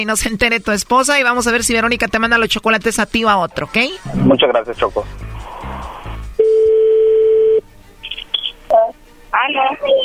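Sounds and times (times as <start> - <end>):
speech: 0.0 - 5.2, 8.8 - 10.0
telephone dial tone: 6.4 - 7.6.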